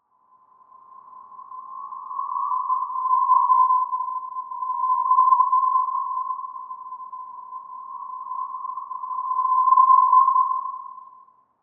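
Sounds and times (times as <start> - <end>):
haunting background feedback: 0.4 - 11.3.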